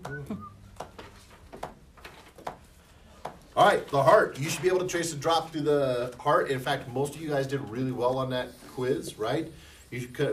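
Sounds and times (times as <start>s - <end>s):
person whistling a thin high tone imitating bronchial wheeze: 0.0s - 0.7s
speech: 3.6s - 10.3s.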